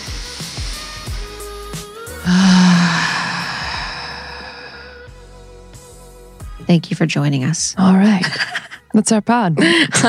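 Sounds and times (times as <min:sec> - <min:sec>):
a few people taking a deep breath together: 0:02.3 - 0:05.0
speech: 0:06.7 - 0:10.0
laughter: 0:08.0 - 0:10.0.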